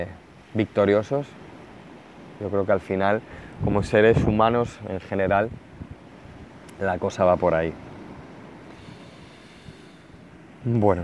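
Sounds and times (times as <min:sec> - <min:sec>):
speech: 0:00.0 - 0:01.4, 0:02.4 - 0:05.6, 0:06.8 - 0:07.8, 0:10.6 - 0:11.0
ocean waves washing: 0:00.0 - 0:11.0
wind roaring against the microphone: 0:02.2 - 0:10.4.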